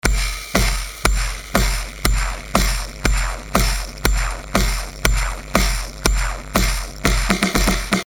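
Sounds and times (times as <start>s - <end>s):
lofi drum beat: 0.0s - 8.0s.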